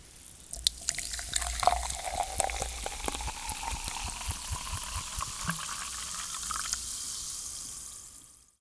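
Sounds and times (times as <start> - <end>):
pouring: 0.0 - 8.4.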